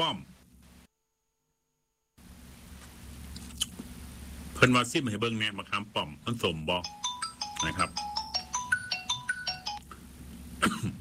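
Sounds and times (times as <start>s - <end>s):
speech: 0.0s - 0.3s, 4.6s - 7.0s, 7.6s - 8.1s
mobile phone ringtone from incoming call: 6.8s - 9.8s
person coughing: 10.6s - 10.9s.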